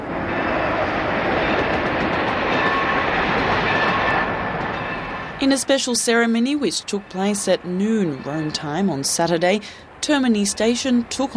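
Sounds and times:
train rolling along rails with rumble and rattle: 0.0s - 11.3s
speech: 5.4s - 11.3s.

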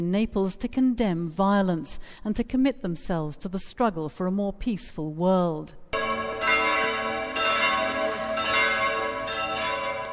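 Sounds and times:
speech: 0.0s - 5.8s
church bells pealing over Piazza del Plebiscito in Naples, Italy: 6.0s - 10.1s.

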